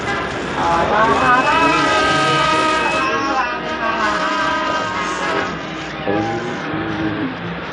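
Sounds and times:
cars passing: 0.0 - 7.7
steady wash of street traffic: 0.0 - 7.7
indistinct crowd voices: 0.2 - 7.7.

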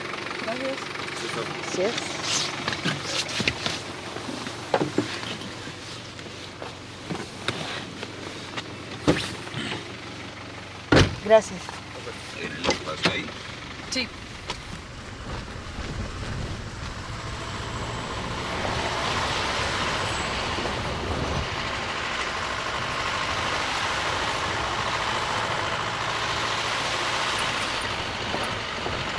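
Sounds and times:
4x4 pickup truck engine rumble while driving: 0.0 - 29.1
road noise: 0.0 - 29.1
speech: 0.6 - 2.6, 11.3 - 11.8, 14.0 - 14.2
wind noise: 14.6 - 17.4, 18.1 - 21.9.

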